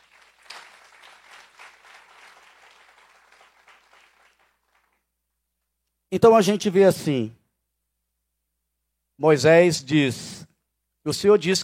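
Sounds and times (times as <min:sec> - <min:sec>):
crowd applauding: 0:00.0 - 0:05.1
speech: 0:06.1 - 0:07.4, 0:09.2 - 0:10.4, 0:11.0 - 0:11.6.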